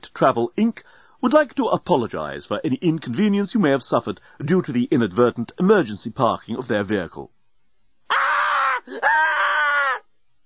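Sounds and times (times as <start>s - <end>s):
speech: 0.2s - 7.4s
woman screaming uncontrollably: 8.1s - 10.1s.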